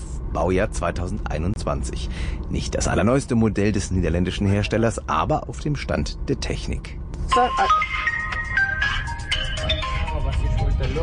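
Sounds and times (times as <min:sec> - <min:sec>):
low rumble: 0:00.0 - 0:11.0
speech: 0:00.4 - 0:08.1
phone ringtone for an incoming call in a truck cab: 0:07.3 - 0:10.6.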